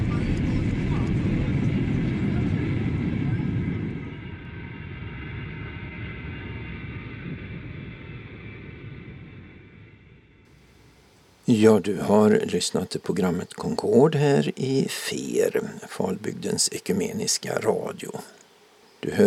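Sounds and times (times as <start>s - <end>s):
airplane taxiing in and stopping: 0.0s - 11.0s
speech: 11.5s - 18.4s, 19.0s - 19.2s.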